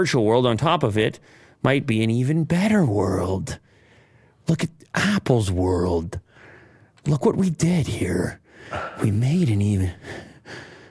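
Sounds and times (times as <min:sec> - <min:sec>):
speech: 0:00.0 - 0:03.6, 0:04.5 - 0:06.2, 0:07.0 - 0:10.7
heavy breathing: 0:01.2 - 0:01.6, 0:03.6 - 0:04.4, 0:06.2 - 0:07.0, 0:08.4 - 0:09.1, 0:09.9 - 0:10.8.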